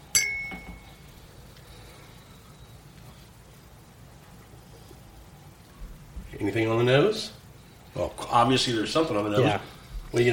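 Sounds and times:
glasses clinking in a toast: 0.1 - 0.9
speech: 6.4 - 7.4, 8.0 - 10.3.

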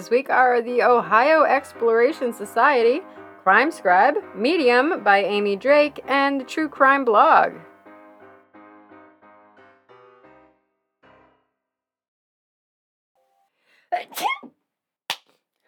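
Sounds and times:
speech: 0.0 - 7.7, 14.0 - 14.5
person sneezing: 14.0 - 14.5.

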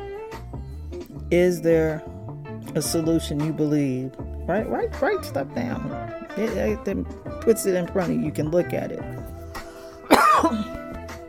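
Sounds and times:
speech: 1.3 - 2.1, 2.8 - 9.2, 10.4 - 10.8
person coughing: 10.1 - 10.8
throat clearing: 10.1 - 10.8.

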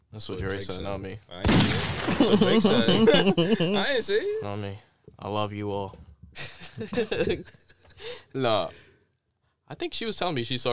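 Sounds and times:
speech: 0.1 - 6.0, 6.8 - 7.6, 8.4 - 8.8, 9.7 - 10.7
gunshot sound effects: 1.4 - 2.6
laughter: 1.9 - 4.5, 6.4 - 8.2.

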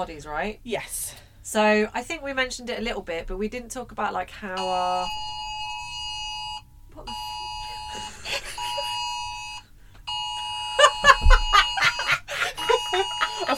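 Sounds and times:
speech: 0.0 - 5.3
phone emergency alert drill tone: 4.6 - 13.5
people laughing: 7.6 - 9.2, 10.4 - 13.5.

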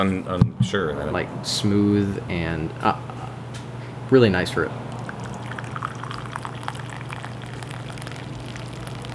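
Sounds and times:
speech: 0.0 - 3.1, 4.1 - 4.8
low steady hum: 0.0 - 9.1
coffee pouring from a carafe: 4.9 - 9.1.

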